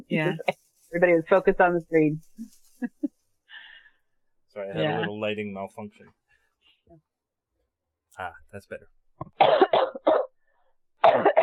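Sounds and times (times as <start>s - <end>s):
speech: 0.1s - 2.9s, 4.6s - 6.2s, 8.2s - 9.8s
person coughing dryly: 9.4s - 10.3s, 11.0s - 11.4s.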